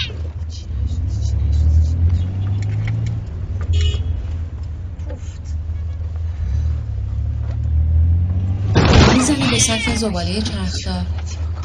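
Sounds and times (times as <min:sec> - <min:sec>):
car stopping and reversing: 0:00.0 - 0:11.6
speech: 0:09.7 - 0:11.6.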